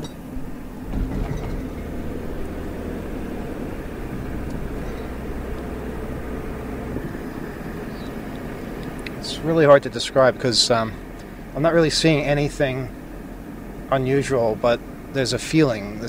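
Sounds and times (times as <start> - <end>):
sharp clunks and bumps: 0.0 - 6.3
vehicle rolling over railroad tracks: 0.0 - 9.8
speech: 9.4 - 11.0, 11.6 - 13.0, 13.9 - 16.0.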